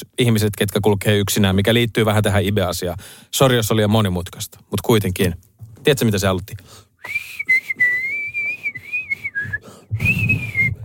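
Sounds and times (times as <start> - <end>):
speech: 0.0 - 7.6
person whistling loudly: 7.0 - 10.8.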